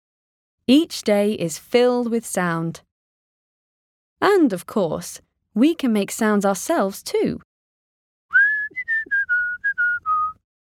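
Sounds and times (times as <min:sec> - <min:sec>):
speech: 0:00.7 - 0:02.9, 0:04.2 - 0:07.5
person whistling through pursed lips: 0:08.3 - 0:10.4.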